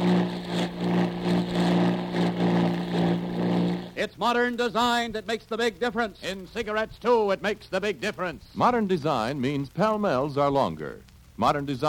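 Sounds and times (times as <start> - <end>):
torpedo boat engines running: 0.0 - 4.0
speech: 4.0 - 11.8.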